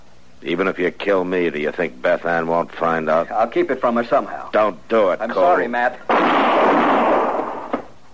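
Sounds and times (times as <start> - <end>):
speech: 0.4 - 6.7
loud gunshot: 6.1 - 7.8.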